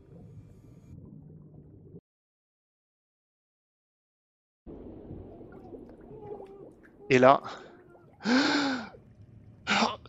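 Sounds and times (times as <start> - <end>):
speech: 7.1 - 7.6, 8.2 - 8.6
person gasping for air after nearly drowning: 8.2 - 9.0.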